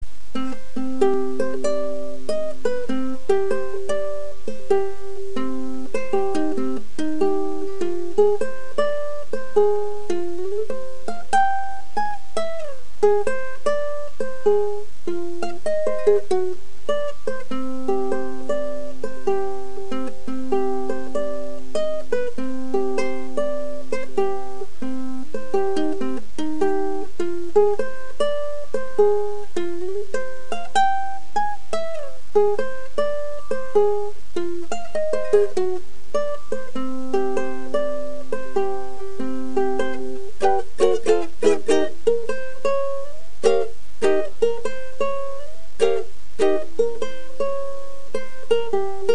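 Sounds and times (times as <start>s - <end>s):
ukulele playing: 0.3s - 49.1s.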